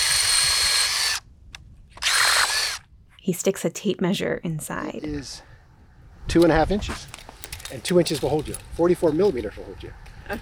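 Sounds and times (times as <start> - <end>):
power drill drilling a hole through lake ice: 0.0 - 1.2, 2.0 - 2.8
speech: 3.2 - 5.5, 6.3 - 10.4.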